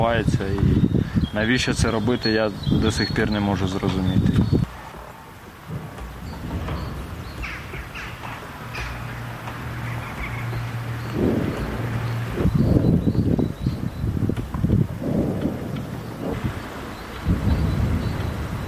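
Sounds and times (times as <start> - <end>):
speech: 0.0 - 4.7
low rumble: 1.9 - 18.6
Grad rocket artillery fire and explosions: 4.1 - 10.3, 11.0 - 18.6
crows cawing: 7.2 - 12.4.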